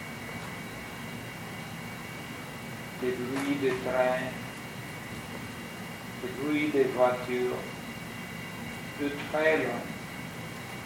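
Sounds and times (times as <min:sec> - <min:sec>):
distant airplane engine drone: 0:00.0 - 0:10.8
speech: 0:03.0 - 0:04.4, 0:06.2 - 0:07.8, 0:09.0 - 0:09.9.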